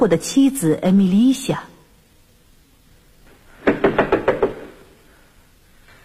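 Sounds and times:
speech: 0.0 - 1.7
sharp knocking on a door as a sound effect in a staged tragedy: 3.6 - 4.7.

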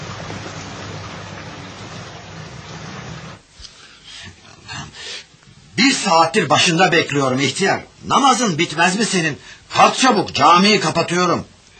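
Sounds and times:
steady rain falling at night: 0.0 - 3.6
speech: 6.0 - 11.7.

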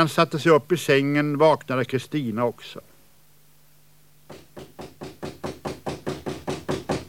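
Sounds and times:
speech: 0.0 - 2.9
knocking on a house door at night: 4.3 - 7.0.

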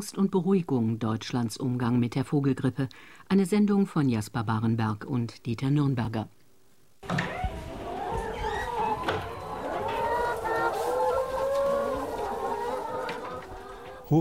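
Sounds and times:
speech: 0.0 - 6.4
flock of 120 white-and-brown feathered hens clucking in a farm henhouse near Kiel: 7.0 - 14.2.

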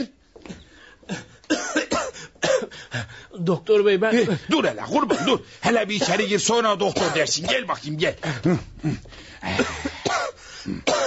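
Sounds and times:
man gasping between coughs: 0.4 - 3.4, 8.2 - 10.9
man with a persistent cough coughing and hacking: 1.1 - 2.8, 4.9 - 11.0
speech: 3.0 - 10.0.

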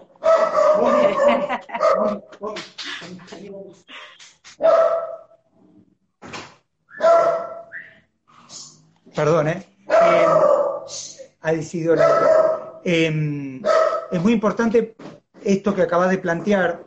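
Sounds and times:
small female dog barking at home: 0.2 - 2.2, 4.6 - 5.2, 7.0 - 7.7, 9.9 - 10.9, 12.0 - 12.8, 13.6 - 14.2
speech: 0.8 - 3.9, 9.2 - 9.7, 11.5 - 16.8
laughter: 0.8 - 4.4.

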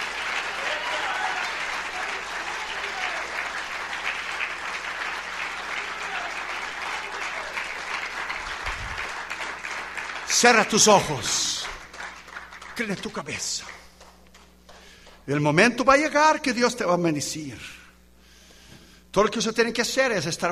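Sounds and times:
church congregation applauding at an evangelistic campaign service: 0.0 - 15.3
speech: 10.4 - 11.6, 12.8 - 13.8, 15.2 - 17.8, 19.1 - 20.5.

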